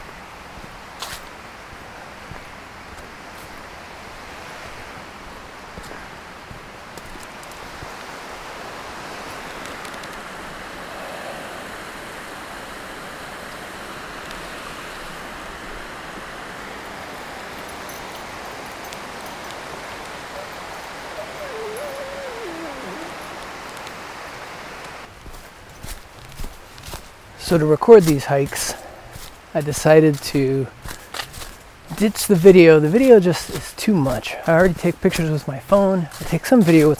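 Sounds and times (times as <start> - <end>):
small waterfalls rushing on a hike: 0.0 - 36.9
speech: 27.5 - 28.8, 29.6 - 30.8, 32.0 - 36.9.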